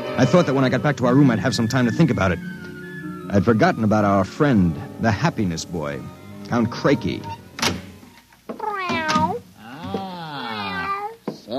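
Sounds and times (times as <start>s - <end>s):
speech: 0.2s - 2.7s, 3.3s - 7.4s
cat meowing: 8.6s - 11.5s.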